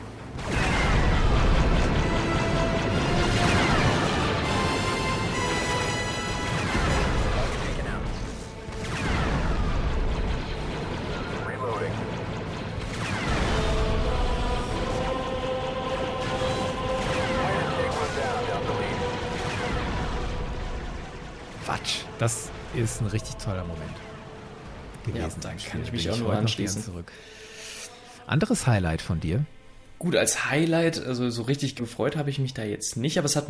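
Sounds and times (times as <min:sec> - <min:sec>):
video game walker blasting droids in a hangar: 0:00.0 - 0:25.4
orchestral video game music score: 0:00.4 - 0:31.4
speech: 0:22.2 - 0:24.1, 0:25.0 - 0:27.4, 0:28.3 - 0:33.4.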